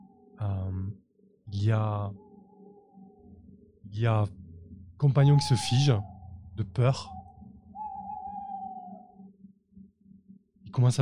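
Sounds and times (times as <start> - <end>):
speech: 0.4 - 2.2, 3.9 - 4.4, 5.0 - 7.2, 10.8 - 10.9
owl cry: 5.1 - 9.3.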